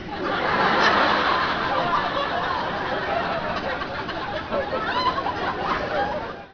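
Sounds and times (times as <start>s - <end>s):
people laughing: 0.0s - 6.5s.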